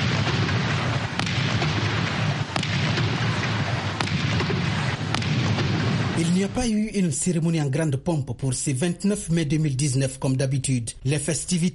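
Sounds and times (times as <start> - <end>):
cannon salute shots: 0.0 - 6.7
steady outdoor noise: 0.0 - 11.7
speech: 6.4 - 11.7.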